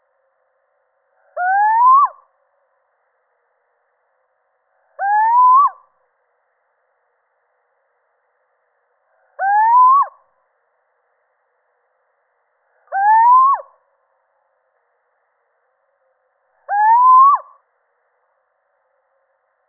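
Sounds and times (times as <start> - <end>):
male little owl giving rising hoots: 1.2 - 2.3, 5.0 - 5.8, 9.3 - 10.2, 12.9 - 13.8, 16.6 - 17.6.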